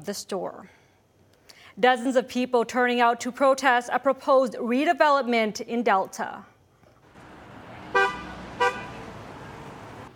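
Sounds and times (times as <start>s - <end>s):
speech: 0.0s - 0.8s, 1.8s - 6.5s
low hum of street traffic: 6.9s - 10.1s
car horn honks in support of demonstrators: 7.2s - 10.1s.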